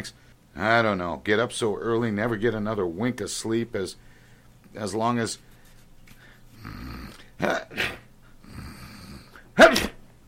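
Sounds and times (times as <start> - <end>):
speech: 0.0 - 4.1, 4.7 - 5.5, 6.6 - 8.0
man sneezing: 7.4 - 8.1, 9.3 - 10.0.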